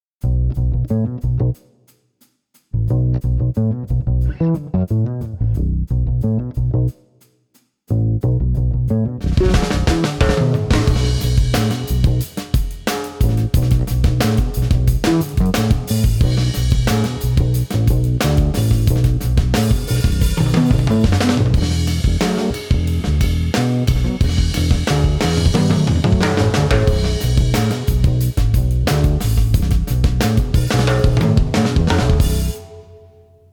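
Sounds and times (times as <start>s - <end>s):
electric upright vertical bass: 0.2s - 1.6s, 2.8s - 7.0s, 7.9s - 12.4s, 13.2s - 33.0s.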